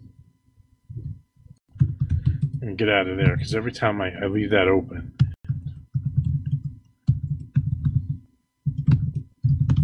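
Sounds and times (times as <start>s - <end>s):
computer keyboard typing with thocky keystrokes: 1.7s - 2.6s, 5.2s - 9.8s
speech: 2.7s - 5.2s.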